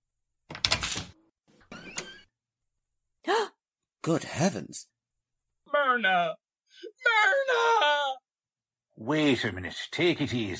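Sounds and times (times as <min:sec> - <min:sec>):
door creaking as it swings: 0:00.5 - 0:02.4
speech: 0:04.0 - 0:05.0, 0:05.7 - 0:08.0, 0:09.0 - 0:10.5
person crying out: 0:06.8 - 0:08.3.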